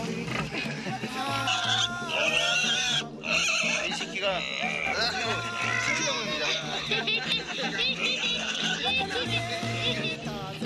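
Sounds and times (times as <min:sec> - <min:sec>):
laughter: 0:00.0 - 0:10.6
voices chattering: 0:00.0 - 0:10.6
piglet squealing grunts: 0:00.3 - 0:09.0.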